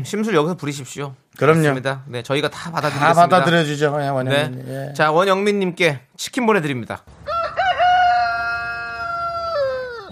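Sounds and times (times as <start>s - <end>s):
speech: 0.0s - 7.3s
rooster crowing: 7.2s - 10.0s.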